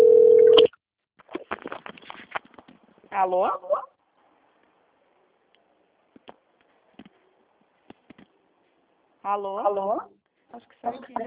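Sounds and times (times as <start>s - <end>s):
telephone tone on a line receiving a transferred call: 0.0s - 0.7s
speech: 3.2s - 3.8s, 9.3s - 11.2s.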